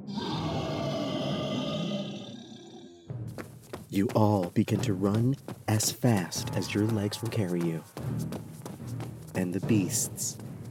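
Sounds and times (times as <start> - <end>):
horned monsters at least 10 feet tall roaring with a growling rasp: 0.0 - 3.1
speech: 3.9 - 8.3, 9.4 - 10.6.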